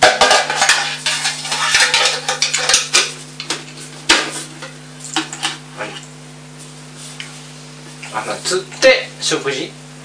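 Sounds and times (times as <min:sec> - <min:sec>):
pots, pans and utensils clattering during cooking: 0:00.0 - 0:06.0
steady low hum: 0:00.0 - 0:10.0
speech: 0:08.4 - 0:09.8.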